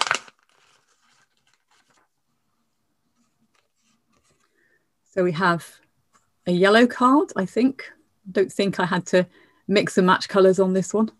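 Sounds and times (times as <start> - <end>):
paper envelope tearing open: 0.0 - 2.1
paper rustling and crinkling: 0.0 - 4.6
speech: 5.2 - 5.8, 6.4 - 11.1.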